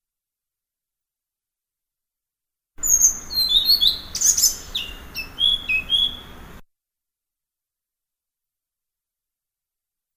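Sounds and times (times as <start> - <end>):
blue-throated flycatcher song: 2.8 - 6.6.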